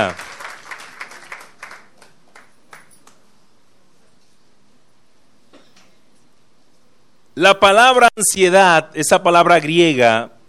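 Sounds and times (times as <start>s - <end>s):
church congregation clapping during a worship service: 0.0s - 3.2s
speech: 7.4s - 10.4s.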